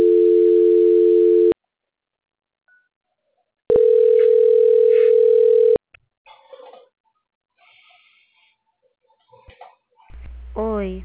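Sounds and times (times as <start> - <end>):
telephone line tones during a call transfer: 0.0 - 1.6, 3.7 - 5.8.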